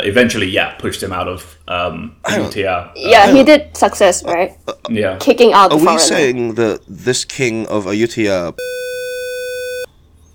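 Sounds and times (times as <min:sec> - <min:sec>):
speech: 0:00.0 - 0:08.8
loud electronic censor bleep tone: 0:08.6 - 0:09.9.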